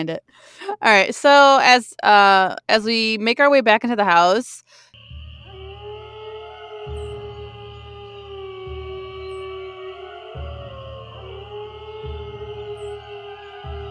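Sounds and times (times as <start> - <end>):
speech: 0.0 - 4.8
deep pulsing drone: 5.0 - 13.8
ghostly moaning howl sound effect: 5.0 - 13.8.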